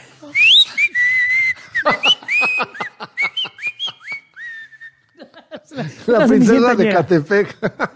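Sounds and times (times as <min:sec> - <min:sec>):
person whistling a shaky tune with dry mouth: 0:00.2 - 0:05.2
laughter: 0:01.6 - 0:04.4, 0:05.1 - 0:07.9
speech: 0:06.1 - 0:07.9.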